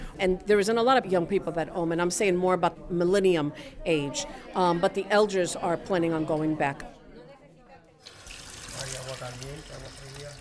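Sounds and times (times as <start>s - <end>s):
speech: 0.2s - 7.0s, 9.1s - 10.3s
water gushing from a tap: 8.0s - 10.3s.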